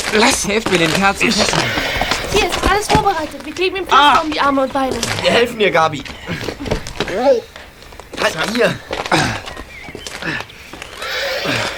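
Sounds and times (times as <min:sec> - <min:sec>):
faint shuffling: 0:00.0 - 0:11.7
speech: 0:00.1 - 0:06.5, 0:07.1 - 0:07.5, 0:08.2 - 0:09.4
hoof knocks: 0:00.5 - 0:11.7
horses whinnying and neighing in a truck: 0:01.2 - 0:02.5, 0:05.2 - 0:07.6, 0:08.6 - 0:11.7.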